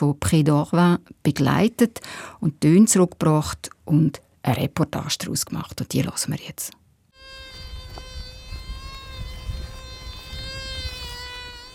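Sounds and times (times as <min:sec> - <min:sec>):
speech: 0:00.0 - 0:06.8
metal detector humming: 0:07.2 - 0:11.7.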